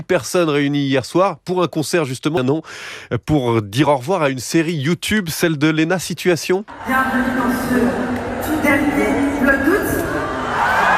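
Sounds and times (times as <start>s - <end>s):
speech: 0.0s - 10.0s
large indoor crowd shouting and cheering: 6.7s - 10.9s.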